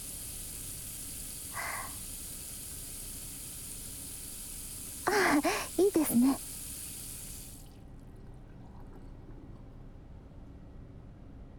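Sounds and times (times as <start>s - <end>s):
water running from a sink hand shower: 0.0s - 7.7s
speech: 5.4s - 6.5s.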